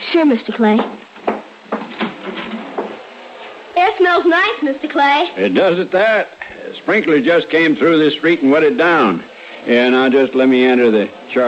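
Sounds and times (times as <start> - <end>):
speech: 0.1 - 1.0, 4.2 - 11.4
front door being opened on a warm evening: 1.2 - 3.1.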